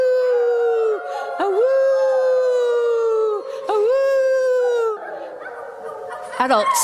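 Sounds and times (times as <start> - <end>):
person imitating wolf howls: 0.0 - 5.5
speech: 6.4 - 6.8.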